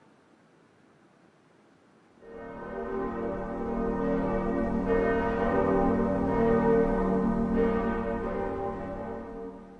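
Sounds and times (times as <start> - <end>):
church bells ringing: 2.3 - 9.7.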